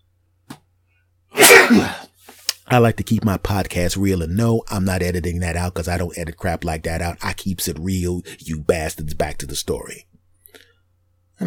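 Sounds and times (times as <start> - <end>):
person sneezing loudly: 1.4 - 2.1
speech: 1.7 - 2.0, 2.7 - 10.1.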